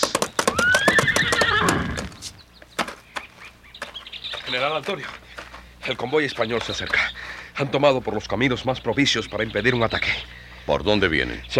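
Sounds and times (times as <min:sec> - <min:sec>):
horse hooves clattering: 0:00.0 - 0:10.2
horse whinnying loudly and shrilly: 0:00.4 - 0:02.4
speech: 0:04.5 - 0:05.2, 0:05.8 - 0:11.5.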